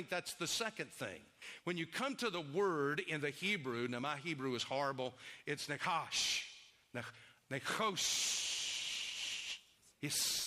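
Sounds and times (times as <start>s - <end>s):
speech: 0.0s - 8.6s, 10.0s - 10.4s
voice imitating a snake's hiss: 8.0s - 9.6s, 10.2s - 10.4s.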